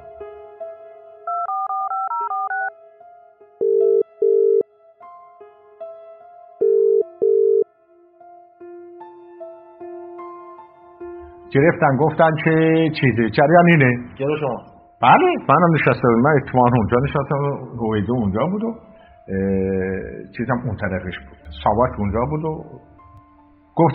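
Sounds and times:
telephone keypad tones: 1.3s - 2.7s, 3.6s - 4.6s, 6.6s - 7.6s
speech: 11.5s - 22.8s, 23.8s - 23.9s.

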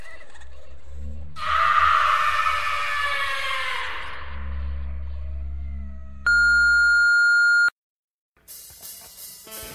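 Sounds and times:
screams of the condemned, overlapping shrieks and wails: 1.4s - 4.5s
steady electronic beep: 6.3s - 7.7s.

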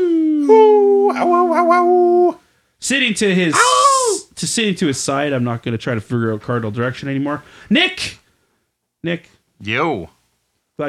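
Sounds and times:
person imitating a wolf howl: 0.0s - 2.4s, 3.5s - 4.3s
speech: 1.2s - 3.8s, 4.4s - 8.2s, 9.0s - 10.2s.

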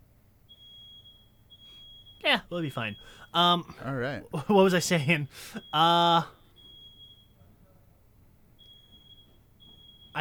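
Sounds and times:
shrill high-pitched fire alarm tone: 0.5s - 3.8s, 5.0s - 7.4s, 8.5s - 10.1s
speech: 2.2s - 6.4s.

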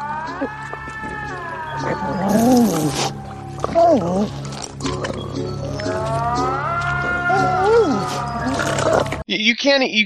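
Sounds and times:
person imitating a weird cat moan: 0.0s - 3.1s, 5.8s - 9.1s
speech: 0.4s - 0.8s, 1.8s - 3.2s, 3.8s - 6.4s, 9.3s - 10.0s.

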